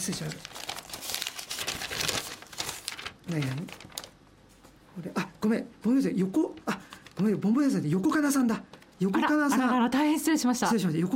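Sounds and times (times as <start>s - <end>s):
speech: 0.0s - 0.6s, 3.3s - 3.9s, 5.0s - 11.1s
paper department-store shopping bag crinkling: 0.0s - 4.2s.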